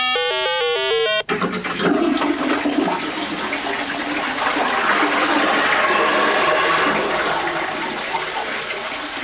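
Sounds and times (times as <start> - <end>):
electronic toilet button beeps: 0.0 - 1.2
toilet flush with rushing gurgling water: 1.2 - 9.2.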